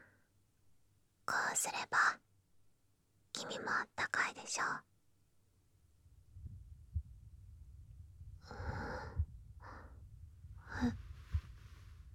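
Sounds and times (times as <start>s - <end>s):
speech: 1.6s - 2.2s, 3.4s - 4.8s, 10.8s - 11.0s
human heartbeat heard against the chest during an embrace: 6.3s - 12.1s.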